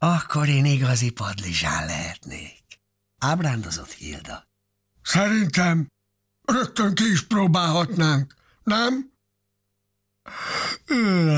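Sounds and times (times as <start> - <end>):
speech: 0.1 - 2.6, 3.2 - 9.1, 10.3 - 11.3
person yawning: 10.3 - 11.3.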